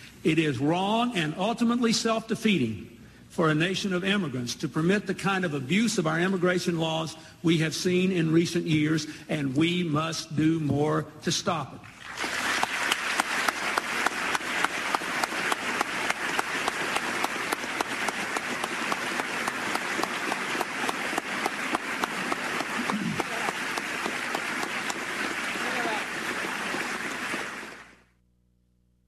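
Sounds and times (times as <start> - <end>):
speech: 0.2 - 12.3
large audience applauding: 12.0 - 28.0.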